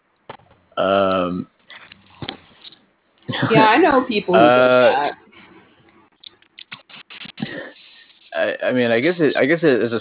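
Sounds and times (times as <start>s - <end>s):
speech: 0.8s - 1.6s, 3.4s - 5.2s, 8.6s - 9.9s
playing cards being shuffled: 6.6s - 8.3s.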